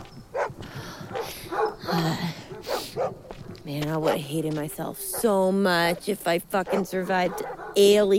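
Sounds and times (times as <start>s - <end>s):
pack of dogs barking and yelping: 0.2s - 4.3s, 6.6s - 8.1s
speech: 3.7s - 8.1s.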